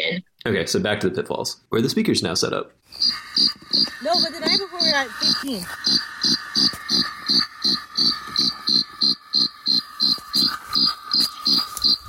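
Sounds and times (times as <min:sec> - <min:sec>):
speech: 0:00.1 - 0:06.8
chorus of crickets chirping: 0:02.8 - 0:12.0.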